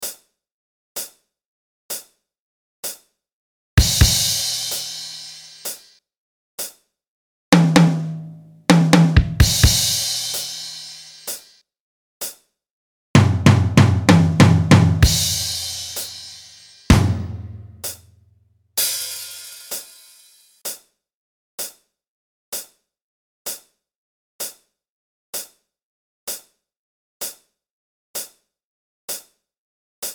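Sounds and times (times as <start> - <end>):
drums jamming: 3.8 - 5.8, 7.6 - 11.4, 13.2 - 18.0, 18.8 - 20.0.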